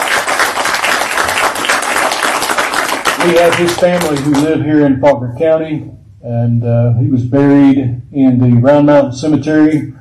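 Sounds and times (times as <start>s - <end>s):
audience applause: 0.0s - 4.5s
speech: 3.2s - 9.9s.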